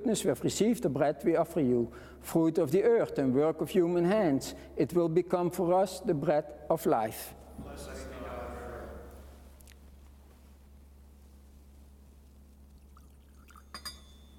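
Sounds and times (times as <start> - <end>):
speech: 0.1 - 8.1
water and wine poured into a glass chalice: 12.6 - 14.3
glass chalice clinking: 12.9 - 14.3.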